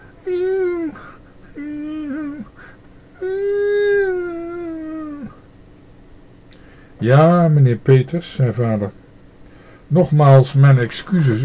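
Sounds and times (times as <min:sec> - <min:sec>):
dog whining softly while lying down: 0:00.0 - 0:05.4
speech: 0:07.0 - 0:09.0, 0:09.9 - 0:11.4.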